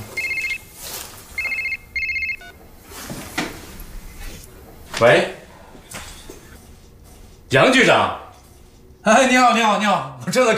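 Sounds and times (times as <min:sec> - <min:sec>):
telephone ringing in short electronic bursts: 0:00.0 - 0:00.8, 0:01.4 - 0:02.6
speech: 0:05.0 - 0:05.4, 0:07.5 - 0:08.2, 0:09.0 - 0:10.5.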